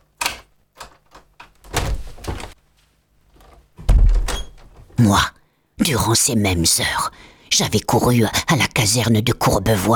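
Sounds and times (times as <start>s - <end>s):
door creaking and scraping as it swings open: 0.2s - 2.6s, 3.4s - 5.0s
heavy low thump of door coming to rest: 1.6s - 2.6s, 3.8s - 4.9s
speech: 5.0s - 9.9s.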